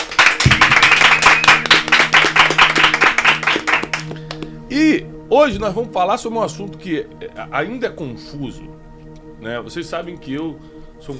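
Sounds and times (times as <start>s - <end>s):
audience applause welcoming two guest speakers: 0.0s - 4.1s
faint music or tones: 0.0s - 11.1s
speech: 4.8s - 11.1s.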